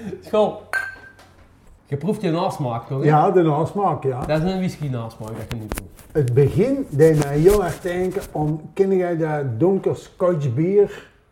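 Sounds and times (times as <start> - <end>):
speech: 0.1 - 0.7, 1.9 - 11.1
glasses clinking in a toast: 0.7 - 1.3.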